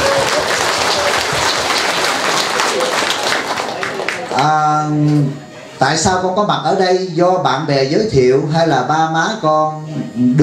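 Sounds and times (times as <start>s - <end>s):
audience clapping hands at a temple gathering: 0.0s - 4.6s
speech: 4.4s - 10.4s.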